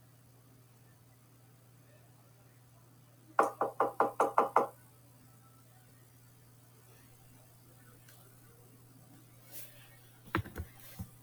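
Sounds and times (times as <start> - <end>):
faint low hum: 0.0 - 11.2
knocking on wood: 3.4 - 4.7.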